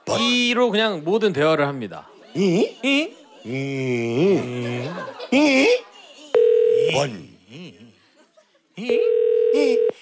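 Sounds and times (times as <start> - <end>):
speech: 0.2 - 5.9, 6.9 - 7.2, 8.8 - 10.0
laughter: 1.8 - 6.4, 7.7 - 9.1
telephone ringing tone from an unanswered outgoing call: 6.4 - 7.0, 8.9 - 10.0.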